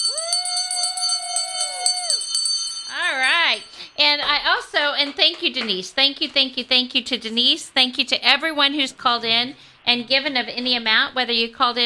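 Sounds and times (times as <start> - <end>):
bell rung in celebration of a founder's donation: 0.0 - 4.0
speech: 4.4 - 11.8.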